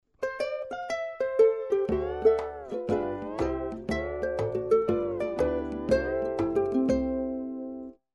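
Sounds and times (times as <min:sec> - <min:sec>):
musical vamp: 0:01.8 - 0:07.3.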